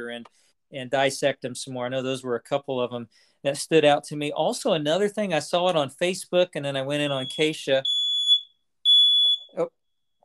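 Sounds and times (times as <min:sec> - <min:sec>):
speech: 0:00.0 - 0:08.0, 0:09.5 - 0:09.8
malfunctioning fire alarm beeps: 0:07.1 - 0:09.6.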